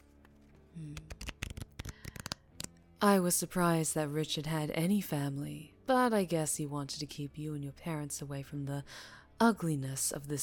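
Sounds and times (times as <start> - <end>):
playing cards being shuffled and dealt: 0.0 - 2.7
speech: 3.0 - 10.4.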